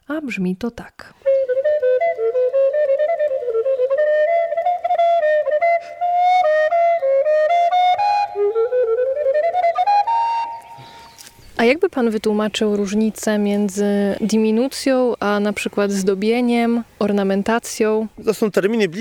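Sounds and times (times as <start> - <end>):
speech: 0.1 - 1.2, 11.6 - 18.9
solo flute-like melody in rapid runs: 1.2 - 11.4.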